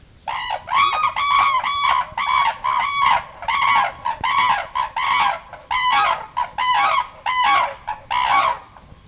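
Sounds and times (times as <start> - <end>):
male and female red-crowned cranes calling in duet in a marsh: 0.3 - 8.9.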